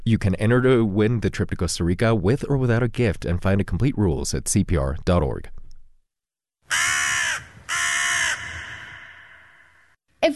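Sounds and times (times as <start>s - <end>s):
speech: 0.1s - 5.6s
crow cawing: 6.7s - 10.0s.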